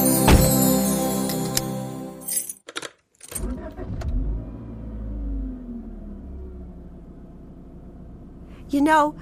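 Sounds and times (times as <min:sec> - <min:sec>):
keys jangling: 0:00.1 - 0:03.4
low road rumble of car driving off: 0:03.4 - 0:09.2
car engine humming: 0:04.3 - 0:09.2
speech: 0:08.7 - 0:09.2.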